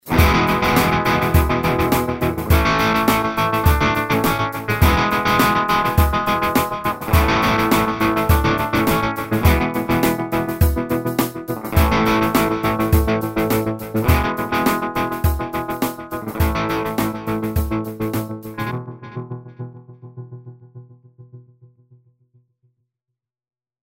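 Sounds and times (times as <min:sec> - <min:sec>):
tremolo sequence: 0:00.0 - 0:18.7.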